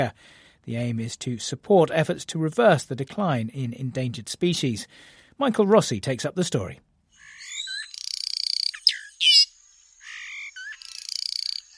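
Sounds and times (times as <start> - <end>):
speech: 0.0 - 6.9
black catbird singing buzzy trills and whistled notes: 7.2 - 11.7.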